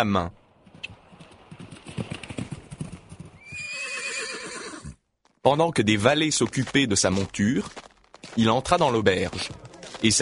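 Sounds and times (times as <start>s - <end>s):
speech: 0.0s - 0.4s, 5.4s - 7.8s, 8.4s - 10.2s
horse hooves clip-clopping at a walk: 0.6s - 4.1s, 6.0s - 10.2s
horse whinnying: 3.4s - 5.0s.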